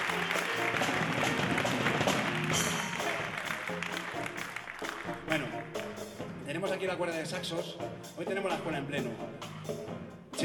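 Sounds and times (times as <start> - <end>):
concert audience applause in a theatre for a drummer: 0.0 - 6.0
speech: 6.8 - 9.8.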